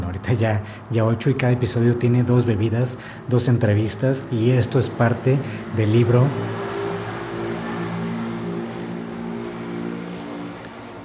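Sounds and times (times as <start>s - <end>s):
speech: 0.2s - 6.6s
motorcycle engine droning as it passes by: 3.8s - 11.0s.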